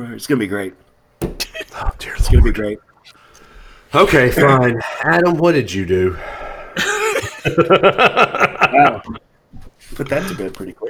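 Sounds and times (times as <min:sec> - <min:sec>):
speech: 0:00.0 - 0:00.8, 0:02.2 - 0:03.2, 0:03.9 - 0:10.8
rough raspy cough with throat clearing: 0:01.2 - 0:02.0
laughter: 0:06.8 - 0:09.2.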